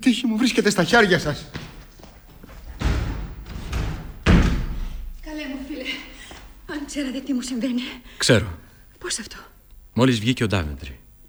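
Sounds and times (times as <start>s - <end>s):
speech: 0.0s - 1.7s, 7.0s - 11.2s
heavy door slamming shut: 0.9s - 5.4s
soft thump: 1.5s - 5.2s.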